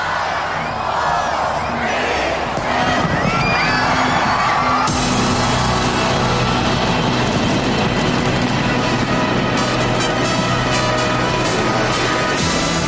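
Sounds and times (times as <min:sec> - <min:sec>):
large crowd cheering and shouting: 0:00.0 - 0:12.8
New Year fireworks booming and crackling: 0:04.9 - 0:10.9.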